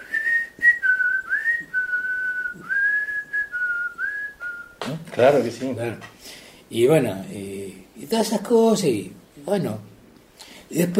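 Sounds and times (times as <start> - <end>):
whistled melody from a radio programme intro theme: 0.0 - 4.8
speech: 5.2 - 9.8, 10.7 - 10.9.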